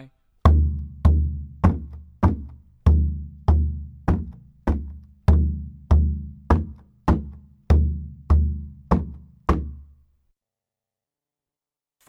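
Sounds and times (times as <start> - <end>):
footstep rhythm: 0.5 - 9.9.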